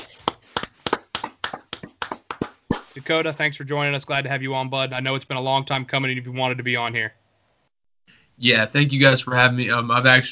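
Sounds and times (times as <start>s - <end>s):
hand clapping for a guest: 0.0s - 3.0s
speech: 3.0s - 7.2s, 8.4s - 10.3s.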